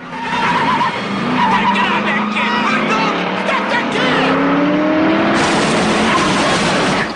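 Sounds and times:
Mustang car engine revving hard: 0.0s - 7.1s
car tires squealing and skidding around a workshop: 0.0s - 7.1s.

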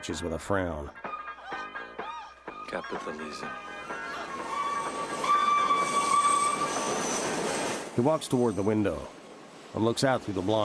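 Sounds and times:
speech: 0.0s - 1.6s, 2.7s - 4.0s, 8.0s - 10.6s
train passing: 2.5s - 10.6s
high whistling tone: 3.6s - 9.0s.

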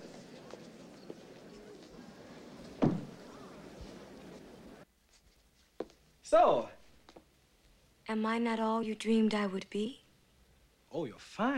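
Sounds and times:
low steady hiss: 0.0s - 11.5s
door being closed behind people entering a room: 2.7s - 3.3s
speech: 6.3s - 6.8s, 8.1s - 10.0s, 10.9s - 11.5s.

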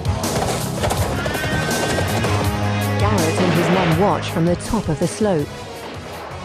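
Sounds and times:
dense clatter of horse hooves: 0.0s - 3.8s
horses neighing with shrill strained cries: 0.3s - 3.3s
speech: 3.6s - 5.7s.

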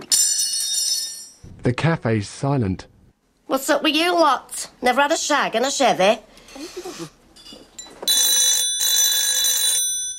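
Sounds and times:
speech: 1.6s - 2.9s, 3.5s - 7.2s
telephone ringing with electronic trill: 8.0s - 10.1s.

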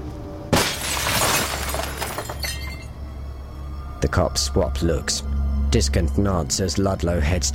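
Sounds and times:
rock thrown through glass French doors of a trailer home, breaking glass: 0.5s - 3.0s
glass shards tinkling and scattering: 0.6s - 2.9s
speech: 4.0s - 7.5s.

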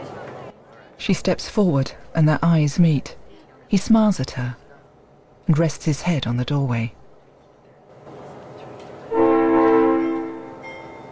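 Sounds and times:
low rumble of rolling train carriages pulling away: 0.0s - 11.0s
speech: 1.0s - 4.6s, 5.5s - 7.0s
train horn blast at a station platform: 9.1s - 10.7s.

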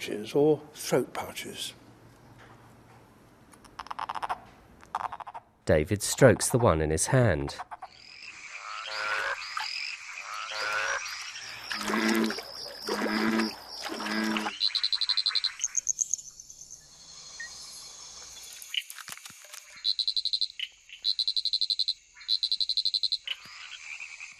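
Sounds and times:
speech: 0.0s - 1.8s, 5.7s - 7.7s
frogs croaking: 3.6s - 5.6s, 7.5s - 18.9s, 19.6s - 24.3s.

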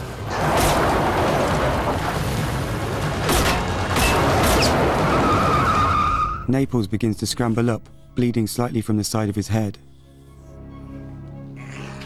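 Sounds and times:
car roaring away: 0.0s - 6.3s
sharp gunshots fired at a fleeing car: 0.3s - 6.0s
speech: 6.5s - 10.0s.

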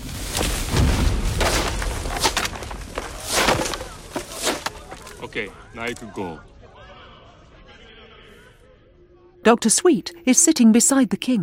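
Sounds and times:
bridge exploding and collapsing behind trucks: 0.0s - 5.2s
splintering crackling debris impacts: 0.0s - 6.1s
laughter: 3.8s - 9.0s
speech: 5.4s - 6.5s, 9.4s - 11.4s.

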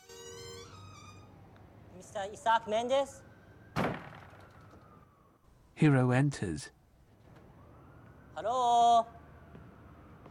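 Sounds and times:
buzzer droning: 0.0s - 1.3s
door swinging open with a sharp thunk: 0.3s - 1.5s
speech: 2.0s - 3.3s, 5.8s - 6.8s, 8.4s - 9.2s.

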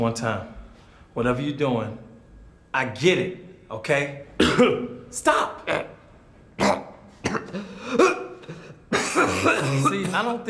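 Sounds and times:
speech: 0.0s - 0.6s, 1.2s - 2.1s, 2.7s - 5.9s, 9.2s - 10.4s
person coughing: 4.4s - 4.9s, 6.6s - 10.3s.

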